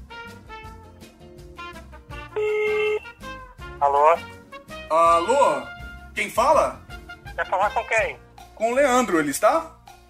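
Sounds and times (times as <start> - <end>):
busy backing music: 0.0 - 10.0
telephone ringing with a bright electronic burst: 2.4 - 3.1
speech: 3.8 - 6.8, 7.4 - 9.8.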